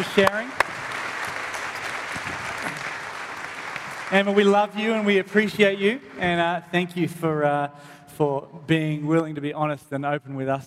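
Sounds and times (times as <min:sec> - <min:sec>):
speech: 0:00.0 - 0:00.6, 0:04.1 - 0:10.6
room full of people applauding: 0:00.0 - 0:06.4.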